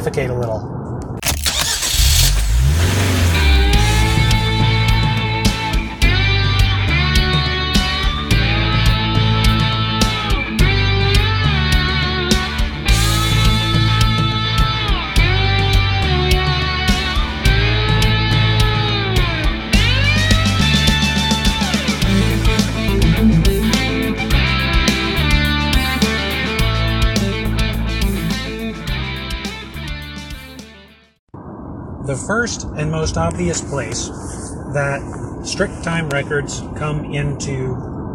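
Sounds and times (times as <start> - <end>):
speech: 0.0 - 0.8, 32.1 - 37.9
car being driven, engine and road drone: 1.0 - 29.2.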